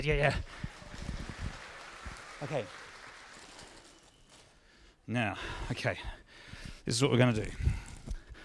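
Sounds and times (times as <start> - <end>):
speech: 0.0 - 0.7, 2.4 - 2.8, 5.1 - 6.2, 6.8 - 7.8
small audience clapping for a volunteer: 0.0 - 4.1.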